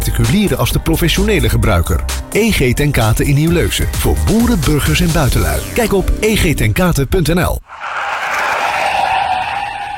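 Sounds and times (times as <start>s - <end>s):
speech: 0.2s - 7.9s
car tyres skidding and squealing: 7.6s - 9.9s.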